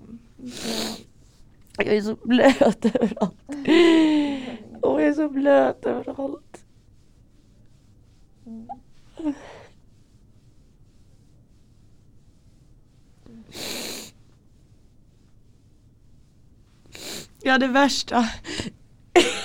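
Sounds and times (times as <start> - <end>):
snorting mucus up through the nose: 0.4 - 1.2, 13.2 - 14.4, 16.9 - 17.4
speech: 1.8 - 4.0, 5.1 - 6.5, 8.5 - 9.6, 17.5 - 19.4.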